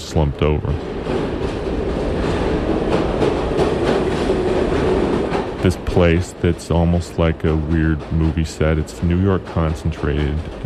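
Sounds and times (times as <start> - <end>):
train rumbling on rails heard from inside the carriage: 0.0 - 10.6
speech: 0.1 - 1.0, 5.6 - 10.6
train wheels rattling and clacking over track joints: 0.6 - 10.6.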